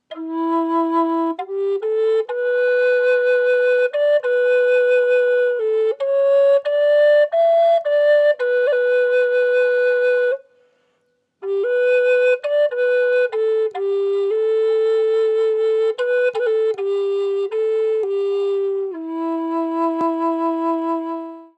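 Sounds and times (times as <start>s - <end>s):
oak medicine flute tone in E: 0.0s - 21.5s.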